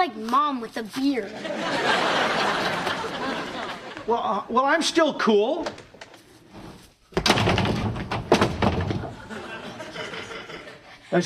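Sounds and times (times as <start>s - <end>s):
speech: 0.0s - 5.9s
laughter: 1.2s - 4.4s, 9.0s - 11.0s
door slamming shut: 7.2s - 9.4s.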